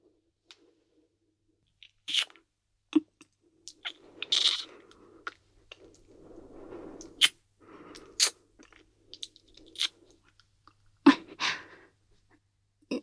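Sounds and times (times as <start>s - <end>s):
kissing lip smacks and mouth sounds: 1.8s - 2.4s, 3.2s - 4.7s, 7.0s - 7.4s, 9.1s - 10.0s
breaths during kissing: 4.0s - 10.4s, 11.1s - 12.4s.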